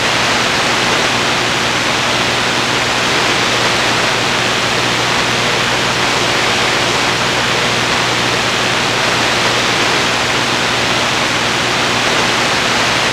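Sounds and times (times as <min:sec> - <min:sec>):
radio noise: 0:00.0 - 0:13.1.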